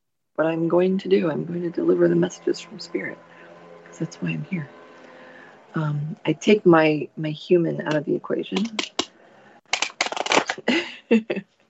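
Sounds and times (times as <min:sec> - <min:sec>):
speech: 0:00.4 - 0:03.3, 0:04.0 - 0:04.8, 0:05.7 - 0:09.0, 0:10.7 - 0:11.5
deck of cards shuffled with a riffle: 0:09.7 - 0:10.7.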